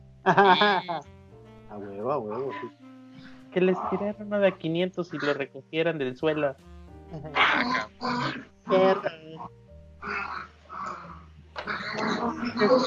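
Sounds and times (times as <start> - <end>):
speech: 0.2 - 2.9, 3.5 - 10.4, 11.6 - 12.8
laughter: 0.3 - 1.0
dogs fighting with snarls, growls and yelps: 7.4 - 9.0, 10.0 - 12.8.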